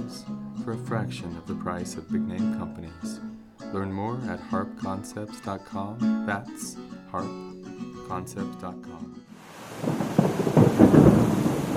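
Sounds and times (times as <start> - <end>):
speech: 0.1 - 7.5, 8.1 - 10.9
rain or storm noise: 9.4 - 11.7
thunder rumbling during a thunderstorm: 9.5 - 11.7.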